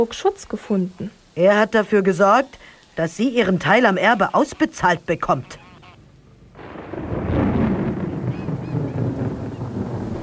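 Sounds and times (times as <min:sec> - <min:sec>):
speech: 0:00.0 - 0:05.6
rolling rumble of thunder from a thunderstorm: 0:06.5 - 0:10.2.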